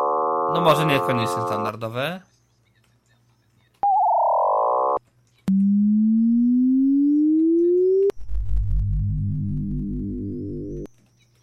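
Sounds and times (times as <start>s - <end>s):
synthetic test tones and sweeps: 0.0s - 1.8s, 3.8s - 10.9s
speech: 0.5s - 2.3s
steady and warbling beeps: 3.9s - 10.9s
electronic buzz: 4.4s - 10.9s.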